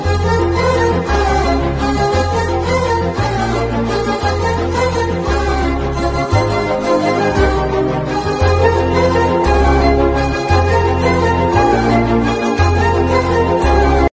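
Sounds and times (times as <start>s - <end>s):
ringtone: 0.2s - 14.1s.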